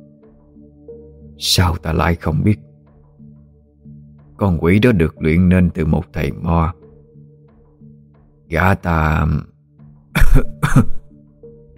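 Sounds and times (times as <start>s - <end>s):
speech: 1.4s - 2.7s, 4.4s - 6.8s, 8.5s - 9.5s, 10.3s - 11.0s
old village shaman coughing harshly: 10.2s - 11.2s.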